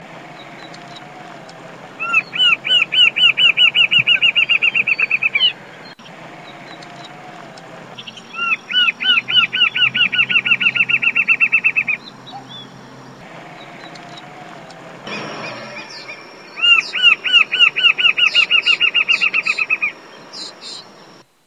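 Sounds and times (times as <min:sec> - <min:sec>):
Thamnophilus ruficapillus calling: 0:00.3 - 0:21.2.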